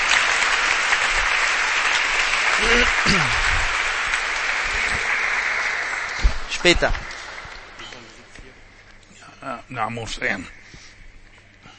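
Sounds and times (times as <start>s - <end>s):
church congregation applauding: 0.0s - 9.1s
speech: 2.6s - 3.4s, 6.6s - 7.0s, 9.7s - 10.6s.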